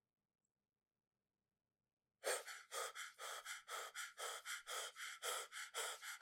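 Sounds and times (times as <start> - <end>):
voice imitating heavy rapid panting of someone running: 2.3 - 6.2.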